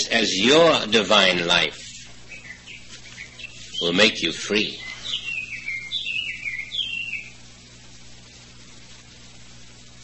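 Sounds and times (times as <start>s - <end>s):
faint low hum: 0.0s - 10.0s
speech: 0.2s - 1.8s, 3.8s - 4.9s
small bird chirping in warbling phrases: 1.9s - 7.5s.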